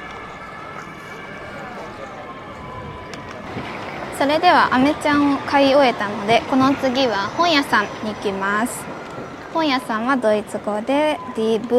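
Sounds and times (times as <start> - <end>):
loud traffic and city noise: 0.0 - 11.7
police car siren passing on a busy street: 0.0 - 11.7
speech: 4.2 - 11.7.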